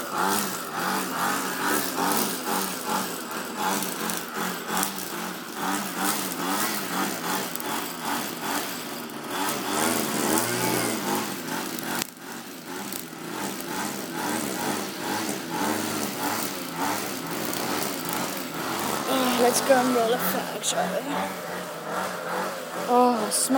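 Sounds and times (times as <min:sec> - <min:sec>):
petrol-powered garden trimmer engine whining: 0:00.0 - 0:23.5
speech: 0:19.7 - 0:21.4, 0:22.9 - 0:23.5.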